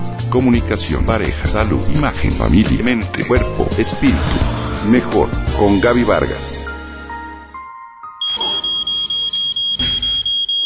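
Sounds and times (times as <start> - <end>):
speech: 0.3 - 6.7
electronic alarm clock beeping: 8.2 - 10.6.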